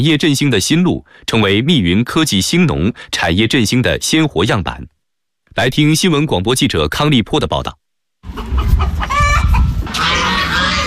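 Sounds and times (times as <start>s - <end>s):
speech: 0.0s - 8.6s
chickens clucking and crowing on a farm: 8.2s - 10.8s
geese honking on a farm: 8.3s - 10.8s.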